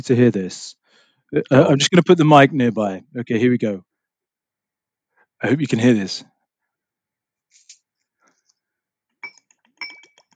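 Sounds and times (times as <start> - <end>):
speech: 0.0 - 3.9, 5.4 - 6.3
glassy clinks and rattles of Dark and Stormy rum cocktail being mixed: 9.2 - 10.3.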